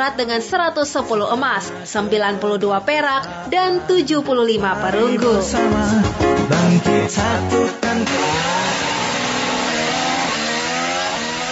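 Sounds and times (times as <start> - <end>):
speech: 0.0 - 8.6
Formula One racing car engine revving: 8.0 - 11.5.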